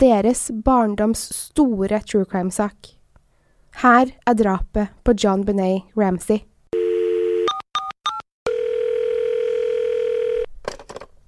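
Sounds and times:
speech: 0:00.0 - 0:03.0, 0:03.7 - 0:06.5
steady telephone dial tone: 0:06.8 - 0:10.5.

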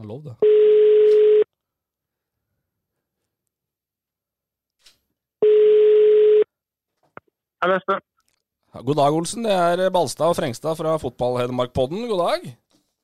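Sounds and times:
speech: 0:00.0 - 0:01.0, 0:07.6 - 0:08.1, 0:08.7 - 0:12.6
telephone ringing tone while a call waits to be answered: 0:00.4 - 0:01.5, 0:05.4 - 0:06.5.

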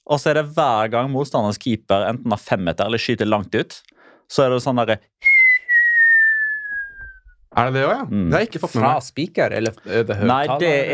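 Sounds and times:
speech: 0:00.1 - 0:05.2, 0:07.6 - 0:10.9
person imitating a football fan's loud piercing whistle: 0:05.2 - 0:07.4.

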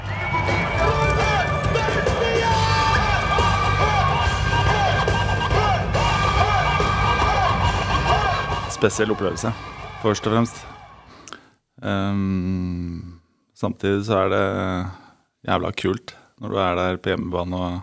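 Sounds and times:
booming boxer's walk-out music: 0:00.0 - 0:11.1
packed arena crowd roaring and cheering at a boxer's ring entrance: 0:00.0 - 0:11.1
speech: 0:08.8 - 0:10.7, 0:11.8 - 0:17.8.

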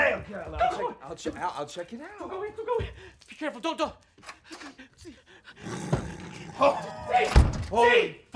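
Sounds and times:
speech: 0:00.3 - 0:08.3
tiger growling and roaring in a bathroom: 0:05.6 - 0:07.1.

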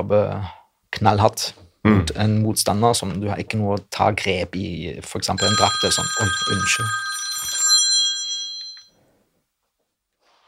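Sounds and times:
speech: 0:00.0 - 0:07.1
classic old-fashioned telephone bell ringing in a fast metallic trill: 0:05.4 - 0:09.0.

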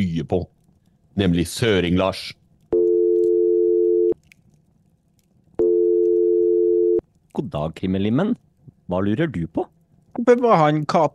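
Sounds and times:
speech: 0:00.0 - 0:00.6, 0:01.2 - 0:02.4, 0:07.4 - 0:11.1
long steady electronic ringback tones of outgoing phone call: 0:02.8 - 0:04.2, 0:05.6 - 0:07.0.

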